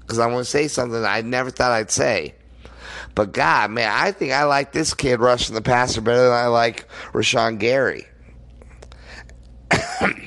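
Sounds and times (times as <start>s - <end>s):
speech: 0.1s - 8.1s, 10.0s - 10.2s
person coughing: 9.7s - 10.2s.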